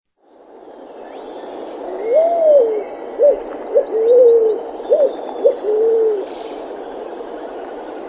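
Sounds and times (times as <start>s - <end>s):
pale-vented pigeon cooing: 1.9s - 6.3s.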